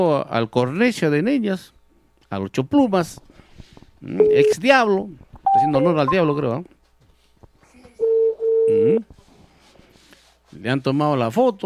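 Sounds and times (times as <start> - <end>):
speech: 0.0 - 3.3, 4.0 - 6.8, 8.7 - 9.1, 10.5 - 11.6
telephone tones as a number is dialed: 4.2 - 4.6, 5.5 - 6.4.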